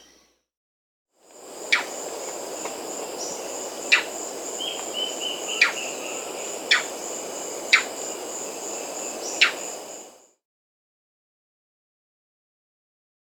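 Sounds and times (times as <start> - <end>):
Chestnut-crowned Foliage-gleaner Automolus rufipileatus calling in Peru: 1.3 - 10.2.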